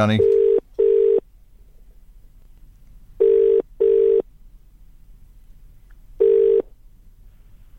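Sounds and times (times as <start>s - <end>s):
speech: 0.0s - 0.4s
telephone ringing tone of short steady electronic beeps: 0.2s - 1.2s, 3.2s - 4.2s, 6.2s - 6.6s.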